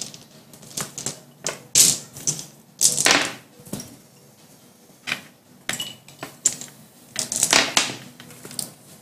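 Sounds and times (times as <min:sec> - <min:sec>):
hard plastic dice clattering as a hand rummages through a pile: 0:00.0 - 0:03.4, 0:06.2 - 0:08.0.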